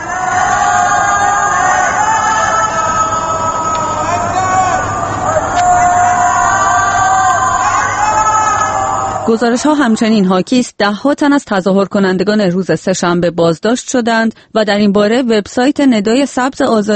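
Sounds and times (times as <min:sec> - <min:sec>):
crowd shouting slogans from rooftops at night in Tehran: 0:00.0 - 0:09.9
speech: 0:09.3 - 0:16.9.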